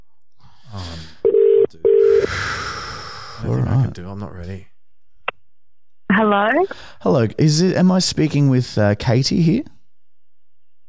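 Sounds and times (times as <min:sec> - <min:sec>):
electronic ringback tones from an outgoing phone call: 0:01.2 - 0:02.3
speech: 0:03.5 - 0:04.7, 0:06.3 - 0:09.7.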